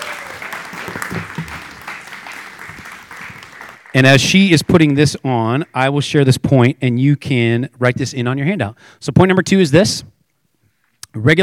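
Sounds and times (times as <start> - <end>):
audience applause: 0.0 - 4.9
speech: 3.9 - 10.1, 11.1 - 11.4.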